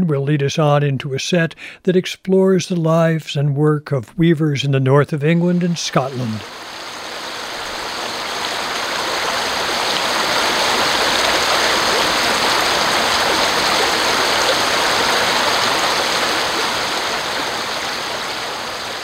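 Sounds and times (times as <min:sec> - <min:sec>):
speech: 0:00.0 - 0:06.8
river water rushing: 0:05.6 - 0:19.0.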